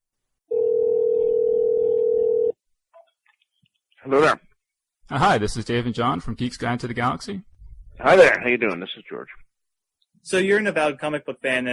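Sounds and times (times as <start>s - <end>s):
steady clear phone tone of a call being placed: 0.5s - 2.6s
speech: 4.0s - 4.4s, 5.1s - 9.4s, 10.2s - 11.7s.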